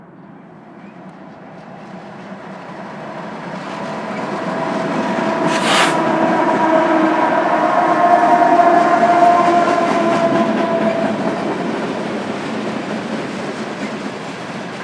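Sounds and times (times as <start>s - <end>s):
long freight train rumbling past on the tracks: 0.8s - 14.8s
high hiss: 5.4s - 6.0s.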